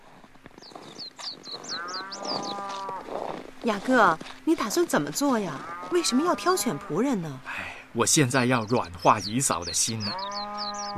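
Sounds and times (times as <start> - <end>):
farmyard cattle lowing: 0.6 - 7.4
farmyard sheep bleating: 1.6 - 3.4, 5.3 - 7.4
speech: 3.6 - 10.4.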